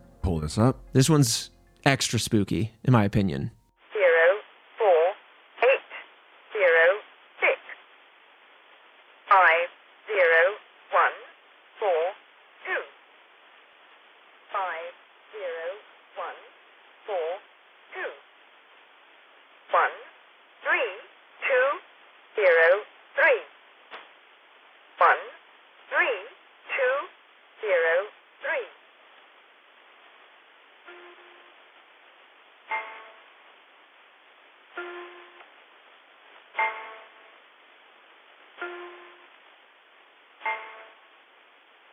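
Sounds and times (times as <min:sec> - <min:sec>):
folk song on shortwave number station broadcast: 0:00.0 - 0:14.7, 0:15.3 - 0:41.9
thin radio-filtered voice calling out short syllables on shortwave number station: 0:00.2 - 0:03.6
speech: 0:00.3 - 0:03.6.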